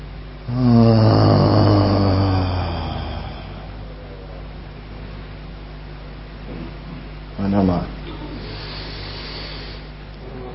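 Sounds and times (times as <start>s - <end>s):
speech: 0.5s - 1.0s
deep breath let out with a low steady vocal tone: 0.5s - 4.4s, 8.3s - 10.0s.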